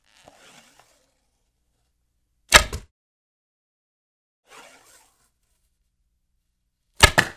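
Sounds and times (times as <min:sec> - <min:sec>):
bowstring being drawn: 0:00.0 - 0:01.4, 0:04.5 - 0:05.4
arrow hitting the target: 0:02.5 - 0:02.9, 0:07.0 - 0:07.3.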